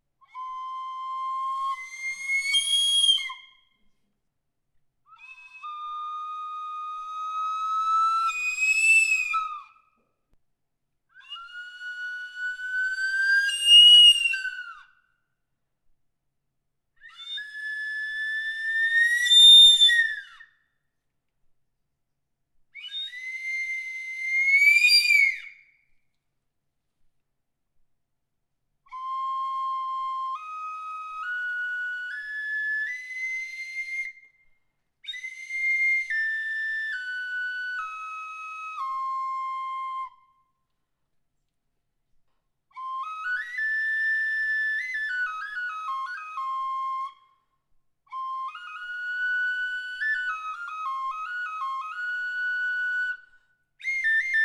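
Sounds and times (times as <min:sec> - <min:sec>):
tubular flute: 0:00.0 - 0:03.9, 0:05.1 - 0:10.1, 0:11.1 - 0:15.0, 0:17.0 - 0:20.6, 0:22.7 - 0:25.7, 0:28.8 - 0:40.6, 0:42.7 - 0:54.4.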